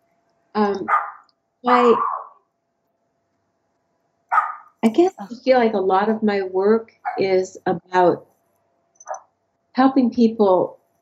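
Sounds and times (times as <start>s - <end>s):
speech: 0.6s - 2.1s, 4.8s - 8.3s, 9.8s - 10.8s
neighbor's dog barking: 0.9s - 2.4s, 4.3s - 4.8s.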